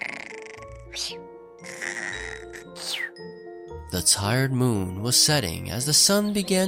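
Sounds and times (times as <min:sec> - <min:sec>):
soft cartoonish snoring of a sleepy caterpillar: 0:00.0 - 0:03.2
speech: 0:01.0 - 0:03.3, 0:03.9 - 0:06.6.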